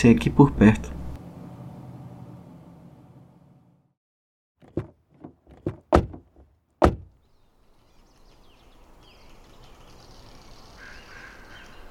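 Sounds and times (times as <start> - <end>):
speech: 0.0 - 1.0
low engine-like rumble: 0.1 - 3.9, 4.6 - 7.2
car doors opening and slamming shut as people get out: 4.6 - 7.2.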